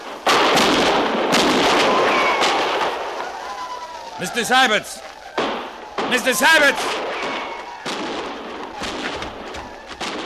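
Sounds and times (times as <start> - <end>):
gunfire cracks from soldiers' guns in a canyon: 0.0 - 3.3, 5.3 - 10.2
speech: 4.2 - 5.1, 6.1 - 7.0.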